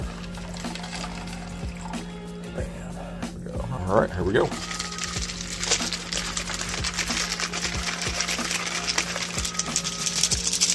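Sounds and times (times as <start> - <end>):
water pouring into a drink mixer holding energy powder: 0.0 - 2.0, 4.6 - 10.7
low constant hum: 0.0 - 10.7
speech: 3.9 - 4.7.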